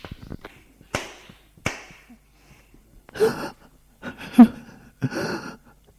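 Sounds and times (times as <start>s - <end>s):
face being slapped: 0.0s - 2.2s
ragged breathing: 2.3s - 5.7s.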